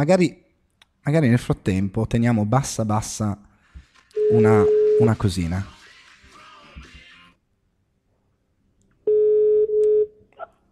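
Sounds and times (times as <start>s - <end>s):
speech: 0.0s - 0.4s, 1.0s - 3.5s, 4.2s - 5.7s
telephone electronic tone while a call is placed: 4.2s - 5.2s, 9.1s - 10.2s.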